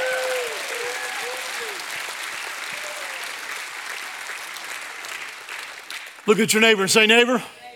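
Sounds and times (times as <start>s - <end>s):
excited whoops and shouts of praise from audience: 0.0s - 1.8s, 2.7s - 3.3s
large crowd clapping: 0.0s - 7.3s
speech: 6.3s - 7.6s.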